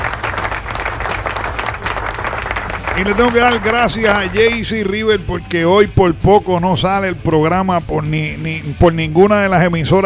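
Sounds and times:
crowd applause: 0.0s - 4.9s
speech: 3.0s - 10.0s.

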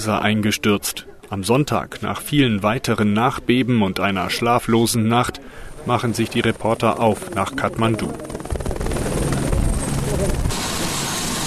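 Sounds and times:
speech: 0.0s - 8.4s
helicopter flying supplies after an earthquake in Nepal: 6.3s - 11.4s.

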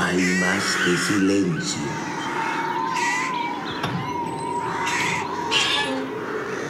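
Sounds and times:
caged birds squawking: 0.0s - 6.6s
speech: 0.1s - 2.2s.

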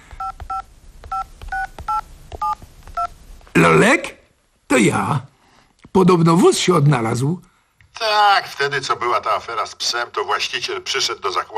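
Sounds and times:
touch-tone telephone dialing beeps: 0.2s - 3.1s
speech: 3.6s - 5.3s, 6.0s - 11.5s.

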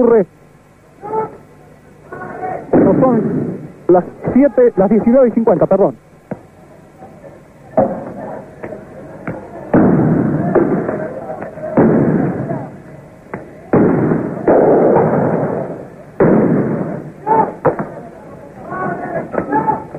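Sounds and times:
speech: 0.0s - 0.4s, 3.0s - 6.0s
roaring crowd and street noise during a street protest: 0.0s - 19.9s
firearm gunshots during a street protest: 2.7s - 3.7s, 9.7s - 12.7s, 13.4s - 18.0s.

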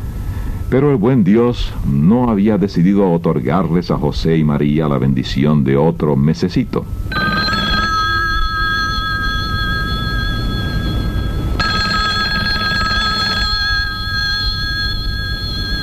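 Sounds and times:
speech: 0.7s - 7.2s
telephone bell ringing in a radio drama scene: 7.1s - 15.8s.

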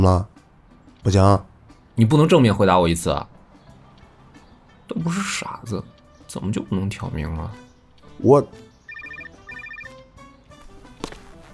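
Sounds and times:
speech: 0.0s - 0.3s, 1.0s - 3.4s, 4.9s - 7.6s, 8.2s - 8.7s
telephone ringing: 8.9s - 10.0s.

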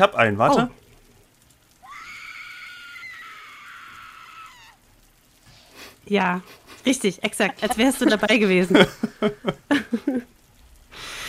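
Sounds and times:
speech: 0.0s - 0.8s, 6.1s - 10.3s
player screaming high and strained: 1.8s - 4.8s
laughter: 7.4s - 10.3s.

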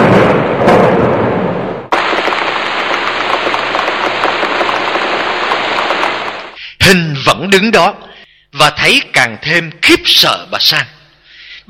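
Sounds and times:
heavy spring rain pouring down in a sudden downpour: 0.1s - 6.6s
speech: 7.5s - 8.0s, 8.6s - 10.9s.

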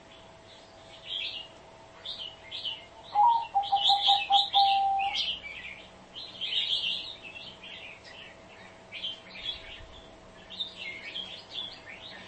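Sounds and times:
small birds chirping and twittering: 0.0s - 12.2s
spotted dove cooing lure call: 3.1s - 5.3s.

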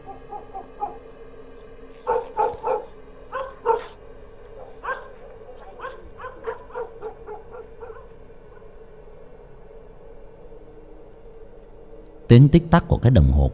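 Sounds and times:
dogs barking in the distance at night at the edge of a village: 0.0s - 9.0s
speech: 12.3s - 13.5s.

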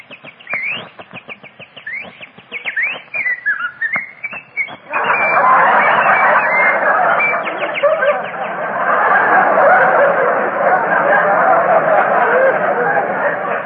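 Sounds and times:
birds chirping and whistling in trees on a spring day in Southern California: 0.0s - 8.7s
laughter: 4.7s - 13.6s.

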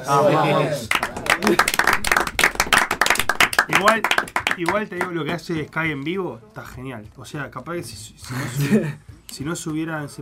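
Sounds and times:
speech: 0.0s - 2.0s, 3.7s - 10.2s
audience applause at a live evening rock event: 0.8s - 5.1s.

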